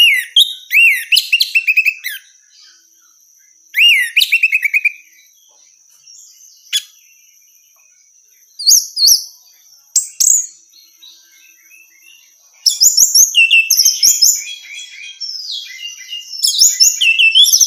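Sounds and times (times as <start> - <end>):
female orange-headed thrush singing repeated whistled notes: 0.0 - 5.4, 6.2 - 7.8, 10.0 - 17.6.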